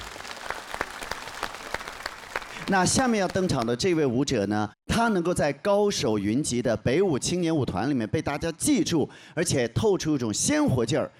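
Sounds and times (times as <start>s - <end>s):
audience applause after a stage dance performance: 0.0s - 3.7s
speech: 2.7s - 11.1s.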